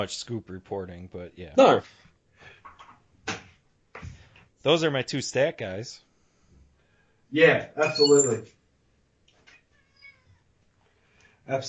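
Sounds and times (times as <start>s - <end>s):
speech: 0.0s - 2.6s, 4.6s - 6.0s, 7.3s - 8.6s, 11.5s - 11.6s
cat meowing in a drawn-out wavering yowl: 9.7s - 10.5s.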